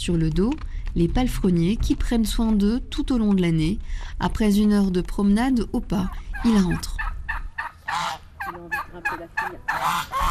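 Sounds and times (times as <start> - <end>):
speech: 0.0 - 7.1, 7.9 - 10.2
turkeys gobbling in a backyard: 6.0 - 10.2
geese honking in a backyard: 6.3 - 10.2.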